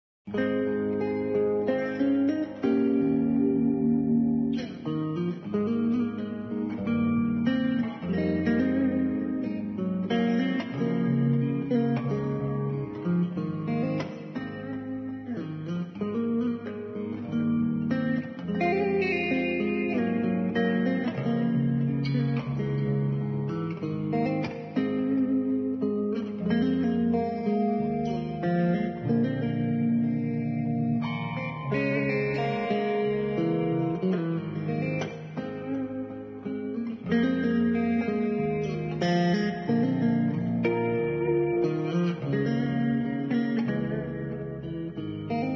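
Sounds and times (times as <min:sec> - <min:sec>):
electric guitar: 0:00.3 - 0:45.5.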